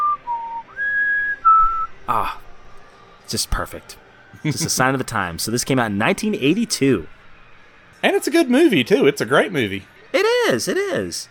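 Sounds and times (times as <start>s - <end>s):
clear pure whistled melody in a song: 0.0s - 2.0s
speech: 2.1s - 2.4s, 3.3s - 7.2s, 8.0s - 11.2s.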